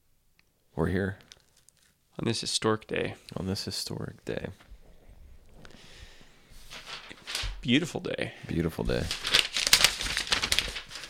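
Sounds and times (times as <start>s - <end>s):
speech: 0.8s - 1.3s, 2.2s - 4.7s, 7.6s - 9.3s
paper crinkling in someone's hands: 1.3s - 2.0s, 6.6s - 7.8s, 8.8s - 11.0s.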